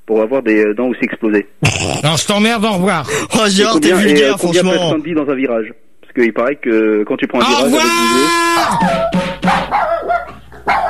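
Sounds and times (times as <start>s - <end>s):
speech: 0.2s - 9.3s
dog barking in quick sharp yaps: 9.4s - 10.8s.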